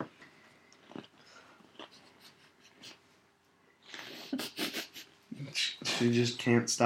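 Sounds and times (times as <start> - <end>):
wet chewing of a crunchy Oreo cookie in a female's mouth: 0.6 - 2.1
speech: 6.0 - 6.8.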